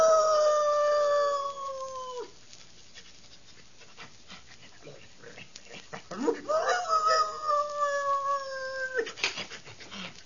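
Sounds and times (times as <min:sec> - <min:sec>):
sheriff's dog howling: 0:00.0 - 0:02.4, 0:06.1 - 0:09.2.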